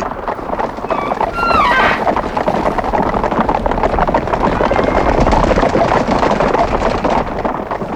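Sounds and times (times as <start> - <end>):
large herd of guanacos stampeding: 0.0 - 7.9
many pounding hooves of guanacos: 0.0 - 7.9
high-pitched guanaco call: 0.8 - 2.1.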